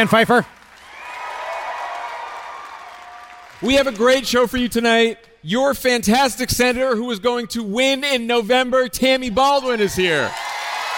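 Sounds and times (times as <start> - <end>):
speech: 0.0 - 0.6, 3.6 - 10.5
live audience applause at an evening show: 0.6 - 4.1, 10.3 - 10.9.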